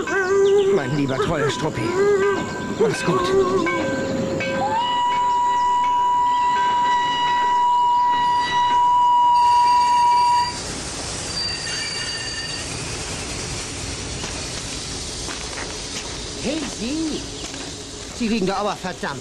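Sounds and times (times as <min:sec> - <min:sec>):
heavy rumbling clatter of slowing railcars: 0:00.0 - 0:19.1
speech: 0:00.8 - 0:04.0, 0:18.2 - 0:19.1
train wheels letting out a long piercing metallic squeal: 0:00.9 - 0:13.3.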